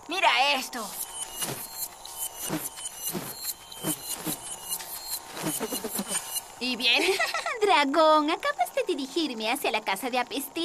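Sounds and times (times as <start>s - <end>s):
whirring buzz imitating a bee's waggle dance: 0.0s - 7.2s
speech: 0.2s - 1.6s, 2.5s - 2.7s, 6.6s - 10.6s
laughter: 6.9s - 7.7s.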